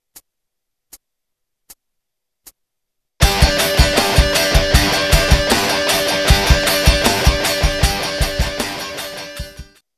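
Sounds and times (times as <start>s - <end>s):
e scratch flag record scratching: 3.2s - 9.6s.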